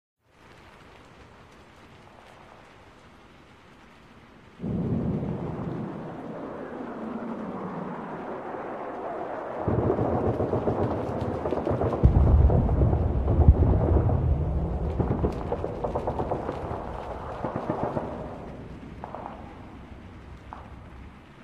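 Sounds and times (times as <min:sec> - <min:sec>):
battle ambience: 0:04.6 - 0:21.4.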